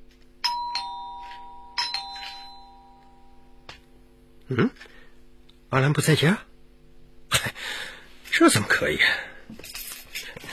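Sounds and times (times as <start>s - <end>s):
doorbell ding-dong: 0.4s - 3.7s
speech: 4.5s - 4.9s, 5.7s - 6.5s, 8.4s - 9.6s.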